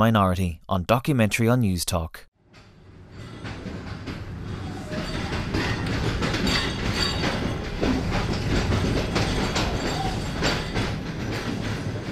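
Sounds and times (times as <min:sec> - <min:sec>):
speech: 0:00.0 - 0:02.3
passenger train wheels clickety-clacking over track joints: 0:02.6 - 0:12.1
passenger train rolling along the rails toward Lahore in Pakistan: 0:02.8 - 0:12.1.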